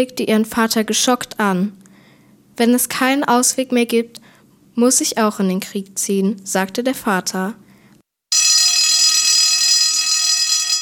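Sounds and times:
speech: 0.0s - 1.8s, 2.6s - 7.6s
alarm bell ringing: 8.3s - 10.8s.

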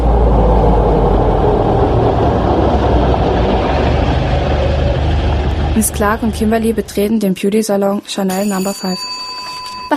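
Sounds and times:
car engine and road noise while driving: 0.0s - 7.2s
speech: 5.8s - 9.2s.

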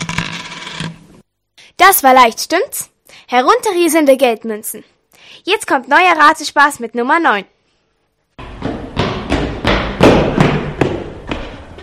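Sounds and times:
speech: 1.8s - 7.5s
footsteps of a person running across a courtyard: 8.4s - 11.8s.

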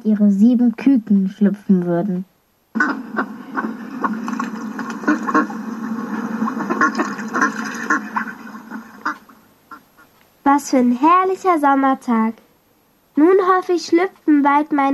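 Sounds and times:
speech: 0.0s - 3.3s, 10.5s - 12.4s, 13.2s - 14.9s
ducks quacking: 2.7s - 10.2s.

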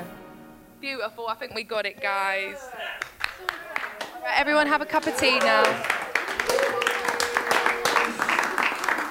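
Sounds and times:
speech: 0.9s - 6.7s
small group clapping: 2.9s - 9.1s
person whooping: 6.4s - 8.6s.

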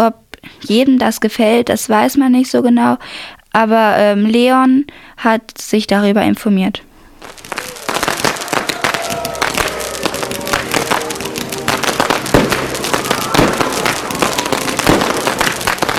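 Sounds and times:
speech: 0.0s - 7.5s
New Year's Eve fireworks and firecrackers exploding: 7.2s - 15.9s
faint murmur of a crowd: 7.5s - 15.7s.

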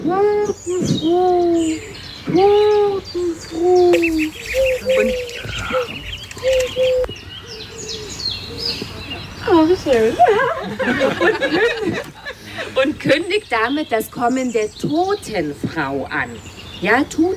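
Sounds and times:
other birds chirping and calling: 0.0s - 17.3s
speech: 0.1s - 5.9s, 9.9s - 12.1s, 12.8s - 17.3s
dove cooing in low hooting phrases: 2.4s - 9.2s
laughter: 3.9s - 6.1s, 9.9s - 13.0s.

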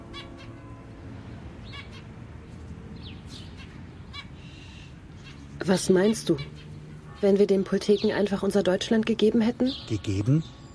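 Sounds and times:
zebra finches chirping: 3.0s - 10.7s
speech: 5.6s - 6.6s, 7.2s - 10.6s.

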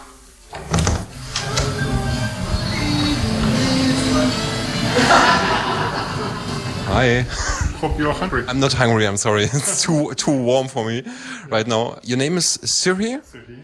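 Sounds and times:
door being pushed open with a creak and thump: 0.5s - 4.0s
laughter: 4.4s - 8.0s
speech: 7.0s - 13.6s.

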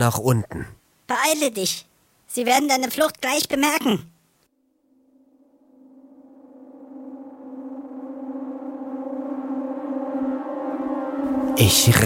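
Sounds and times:
speech: 0.0s - 4.1s, 11.6s - 12.0s
alarm siren wailing: 4.8s - 12.0s.

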